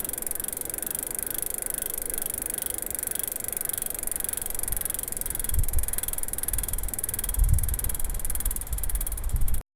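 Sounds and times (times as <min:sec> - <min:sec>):
bicycle rattling bumpily: 0:00.0 - 0:09.6.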